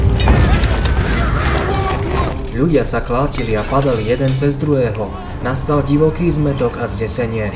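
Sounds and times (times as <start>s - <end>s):
crackling and rattling debris: 0.0s - 5.4s
deep earthquake rumble: 0.0s - 5.8s
speech: 2.6s - 7.5s.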